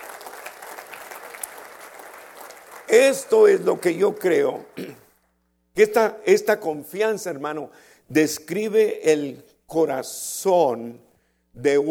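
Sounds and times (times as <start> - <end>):
church audience applauding: 0.0 - 4.8
speech: 2.9 - 5.0, 5.8 - 11.8.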